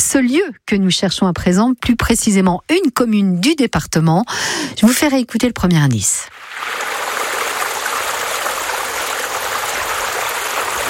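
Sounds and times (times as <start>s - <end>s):
speech: 0.1s - 6.8s
water flowing in a stream: 6.3s - 10.8s.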